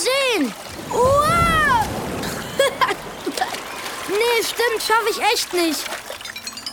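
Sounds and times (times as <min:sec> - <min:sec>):
small water splashes: 0:00.0 - 0:06.7
speech: 0:00.4 - 0:01.1, 0:04.5 - 0:06.0
ocean wave crashing: 0:00.7 - 0:05.0.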